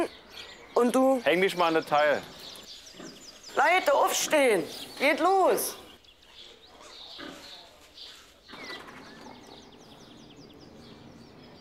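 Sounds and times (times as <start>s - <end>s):
speech: 0.8s - 2.4s, 3.0s - 5.8s
sow snorting and grunting in an outdoor pen: 2.2s - 4.4s, 6.4s - 9.9s.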